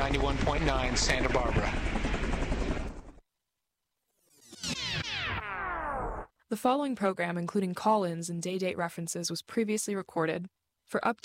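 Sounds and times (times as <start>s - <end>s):
loud helicopter rotor: 0.0s - 3.2s
speech: 0.1s - 2.2s, 6.5s - 11.2s
bright sweeping electronic tones: 4.2s - 6.3s.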